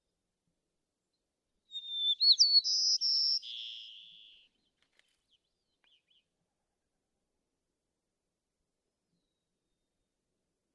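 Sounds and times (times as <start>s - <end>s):
white-crowned sparrow song: 1.7s - 6.4s.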